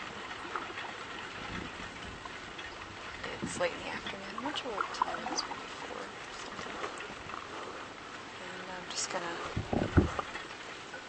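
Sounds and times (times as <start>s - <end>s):
river water lapping around a small kayak: 0.0s - 11.0s
speech: 3.4s - 5.9s, 9.1s - 10.0s.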